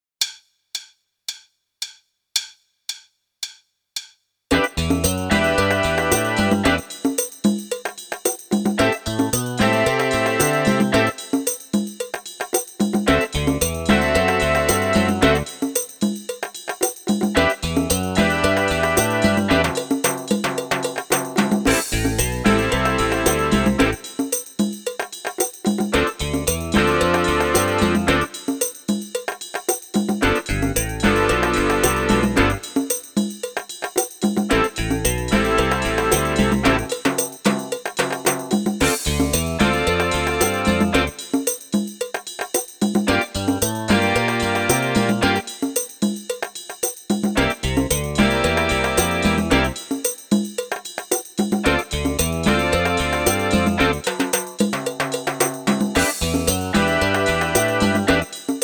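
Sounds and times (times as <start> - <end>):
bass drum: 4.5 - 7.0, 13.0 - 15.6, 17.3 - 20.6, 21.4 - 24.1, 25.9 - 28.4, 30.2 - 32.8, 34.5 - 37.6, 38.8 - 41.2, 43.0 - 45.5, 47.3 - 49.8, 51.6 - 54.1, 55.8 - 58.4
snare drum: 4.5 - 58.6.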